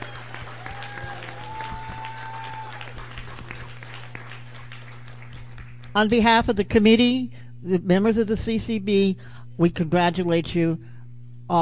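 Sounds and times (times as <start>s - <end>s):
faint whistles: 0.0s - 0.6s
crowd applauding at an awards event: 0.0s - 6.0s
low constant hum: 0.0s - 11.6s
speech: 6.0s - 10.9s, 11.5s - 11.6s.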